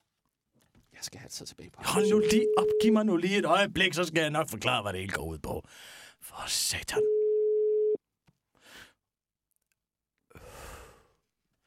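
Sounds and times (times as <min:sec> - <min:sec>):
speech: 0:01.0 - 0:07.1
telephone ringing tone while calling: 0:02.0 - 0:03.2, 0:07.0 - 0:08.0.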